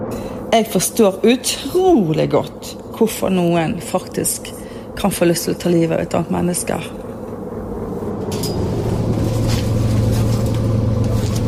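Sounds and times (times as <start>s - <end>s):
speech: 0.1s - 7.0s
bus engine idling as passengers get off: 4.2s - 11.4s
shuffling movements: 8.7s - 11.4s.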